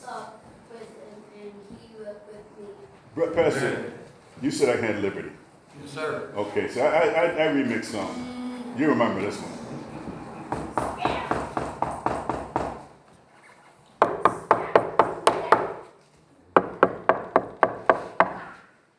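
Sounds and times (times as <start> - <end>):
speech: 3.2 - 5.3, 6.0 - 9.8
knocking on wood: 9.9 - 12.9, 14.0 - 15.8, 16.6 - 18.4.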